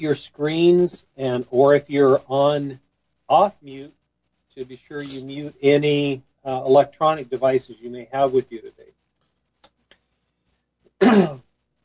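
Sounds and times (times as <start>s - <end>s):
speech: 0.0s - 4.0s, 4.6s - 9.0s, 11.0s - 11.4s
forceful raspy throat clearing: 11.0s - 11.4s.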